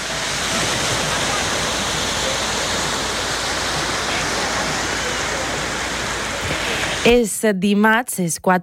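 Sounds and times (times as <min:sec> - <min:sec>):
sea waves breaking on a beach: 0:00.0 - 0:07.2
speech: 0:07.0 - 0:08.6.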